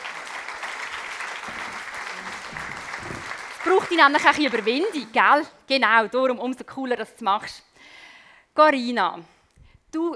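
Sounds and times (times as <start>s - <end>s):
audience applauding: 0.0s - 5.2s
speech: 3.7s - 8.0s, 8.6s - 9.3s, 9.9s - 10.1s.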